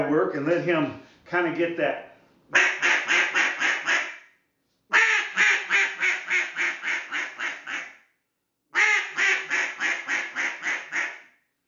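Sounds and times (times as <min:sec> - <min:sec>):
speech: 0:00.1 - 0:02.7
cut-down duck call imitating barking hen: 0:02.5 - 0:04.2, 0:04.9 - 0:07.9, 0:08.8 - 0:11.2.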